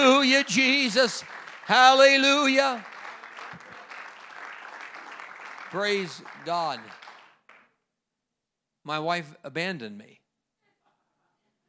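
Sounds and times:
church congregation clapping hands in applause: 0.0s - 7.8s
speech: 0.3s - 2.9s, 5.7s - 7.0s, 8.8s - 10.2s.

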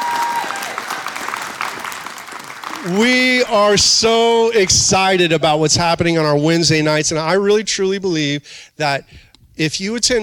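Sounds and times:
church service audience applauding a panel: 0.0s - 3.8s
speech: 2.8s - 10.2s.

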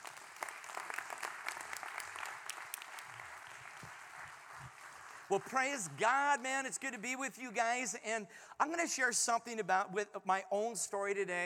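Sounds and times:
crowd applauding with many hands clapping: 0.0s - 6.4s
speech: 5.3s - 11.4s.

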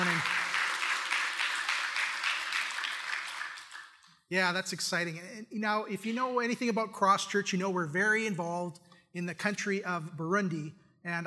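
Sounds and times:
audience applauding: 0.0s - 4.1s
speech: 4.3s - 11.2s.

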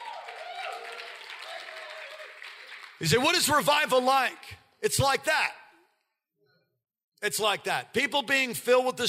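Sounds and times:
people cheering and calling out: 0.0s - 2.5s
large audience applause: 0.0s - 3.2s
speech: 3.0s - 5.6s, 7.2s - 9.0s.

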